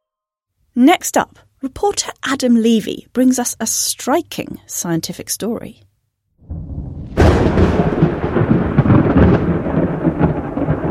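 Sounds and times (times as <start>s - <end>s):
speech: 0.8s - 5.9s
thunder from a storm cracking and rumbling: 6.4s - 10.8s.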